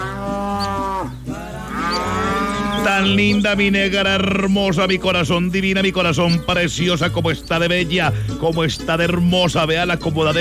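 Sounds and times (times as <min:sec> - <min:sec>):
dairy cow mooing: 0:00.0 - 0:07.6
speech: 0:02.8 - 0:10.3.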